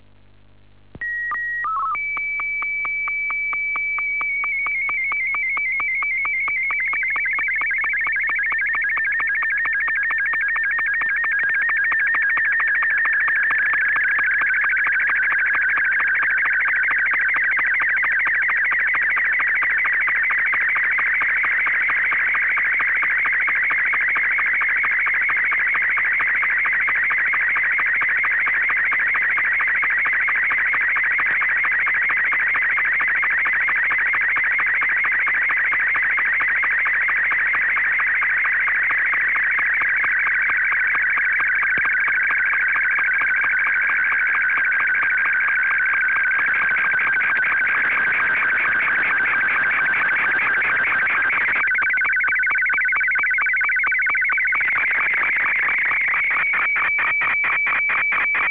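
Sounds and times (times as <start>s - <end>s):
SSTV signal tones: 0.8s - 58.4s.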